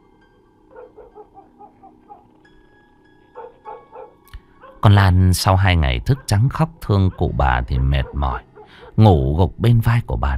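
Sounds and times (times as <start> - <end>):
dog barking at night near the sea: 0.7 - 2.4, 3.3 - 4.9, 6.0 - 9.0
speech: 4.8 - 10.3.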